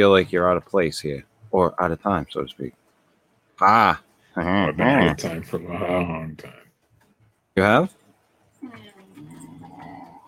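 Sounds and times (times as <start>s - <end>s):
speech: 0.0s - 2.8s, 3.6s - 6.6s, 7.6s - 8.0s
dog groaning and moaning: 9.2s - 10.2s.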